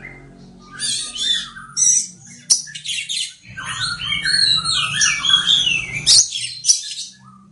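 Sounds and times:
Oriental magpie-robin singing: 0:00.0 - 0:07.5.

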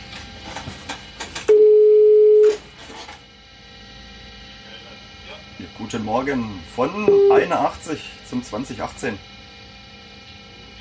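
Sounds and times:
short telephone tone bursts on a long-distance train driver's phone: 0:01.5 - 0:02.6, 0:07.1 - 0:07.4
steady single-pitch telephone tone on a long-distance train driver's phone: 0:01.5 - 0:02.6, 0:07.0 - 0:07.6
speech: 0:05.9 - 0:09.4.

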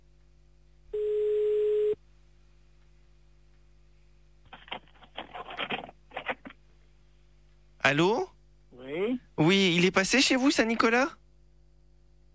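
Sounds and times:
telephone ringback tone of a call being placed: 0:01.0 - 0:02.0
speech: 0:07.8 - 0:08.3, 0:09.4 - 0:11.2.

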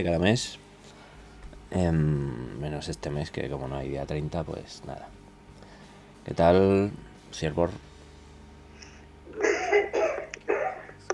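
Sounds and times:
speech: 0:00.0 - 0:00.6, 0:01.7 - 0:05.2, 0:06.3 - 0:07.9
person coughing: 0:09.3 - 0:11.0.

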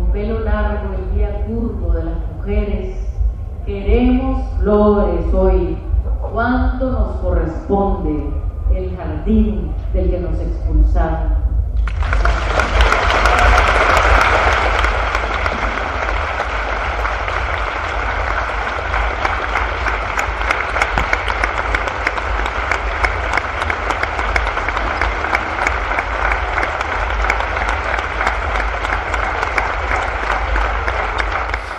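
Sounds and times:
speech: 0:00.1 - 0:03.0, 0:03.7 - 0:05.7, 0:06.3 - 0:11.4
crowd applause closing a poetry recital at a literary festival: 0:11.8 - 0:31.7.

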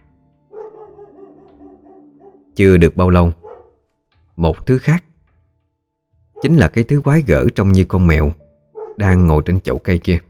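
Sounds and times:
dog giving a cautious warning bark: 0:00.5 - 0:02.6, 0:03.3 - 0:03.8, 0:06.4 - 0:06.7, 0:08.7 - 0:09.1
speech: 0:02.6 - 0:03.4, 0:04.4 - 0:05.1, 0:06.4 - 0:08.4, 0:09.0 - 0:10.2.

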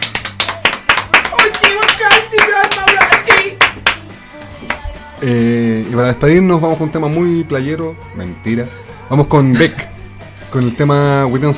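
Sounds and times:
group clapping as a farewell for a departing colleague: 0:00.0 - 0:04.9
speech: 0:05.2 - 0:09.9, 0:10.5 - 0:11.5.

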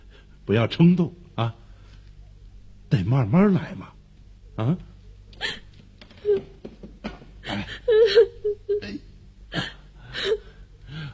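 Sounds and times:
speech: 0:00.5 - 0:01.6, 0:02.9 - 0:04.0, 0:04.6 - 0:05.6, 0:07.5 - 0:10.4
young girl crying after a fall: 0:06.2 - 0:06.6, 0:07.4 - 0:09.0.

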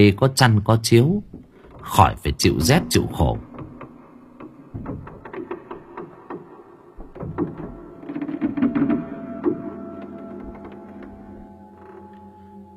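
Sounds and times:
speech: 0:00.0 - 0:03.5
wooden handloom creaking and knocking while weaving cloth at night: 0:00.8 - 0:12.4.

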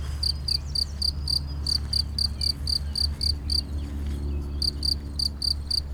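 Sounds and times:
cricket chirping in short high pulses: 0:00.2 - 0:03.6, 0:04.6 - 0:05.8.

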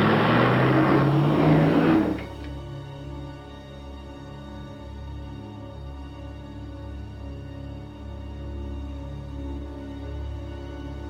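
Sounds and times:
car engine roaring as the vehicle speeds toward a school gate: 0:00.0 - 0:02.6.

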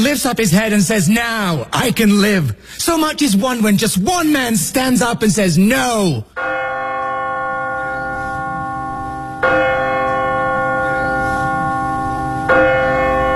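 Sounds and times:
speech: 0:00.0 - 0:06.7
bell of a church tolling: 0:05.8 - 0:13.3.

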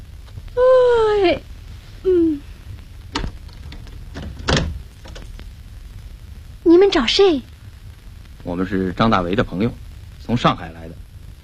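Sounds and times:
low hum: 0:00.0 - 0:11.4
home door hinge creaking as door opens: 0:03.1 - 0:05.3
speech: 0:06.8 - 0:07.5, 0:08.5 - 0:11.0.

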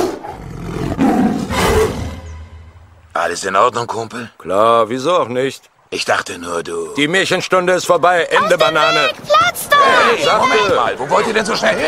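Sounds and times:
hungry tiger roaring: 0:00.0 - 0:02.3
speech: 0:03.3 - 0:11.8.

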